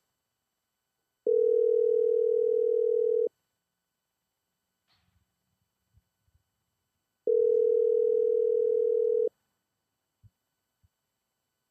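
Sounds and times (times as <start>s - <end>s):
telephone line tone of an unanswered call: 1.3s - 3.3s, 7.3s - 9.3s.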